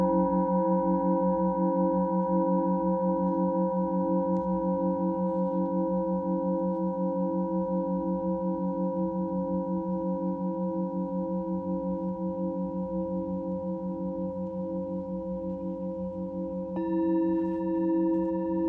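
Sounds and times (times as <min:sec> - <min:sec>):
Tibetan singing bowl humming with bright overtones: 0:00.0 - 0:18.6.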